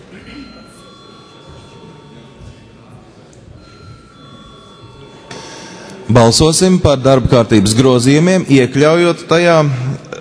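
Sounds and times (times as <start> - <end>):
murmur of voices in a large hall: 0.0 - 10.1
room noise from a large hall: 0.0 - 10.1
parliament voting bell ringing before a vote: 0.4 - 2.9, 3.6 - 7.3
speech: 6.1 - 10.0.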